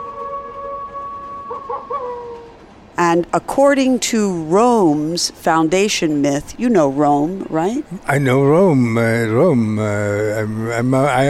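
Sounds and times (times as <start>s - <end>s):
wolf howling: 0.0s - 2.6s
faint hiss: 2.6s - 11.2s
speech: 3.0s - 11.2s.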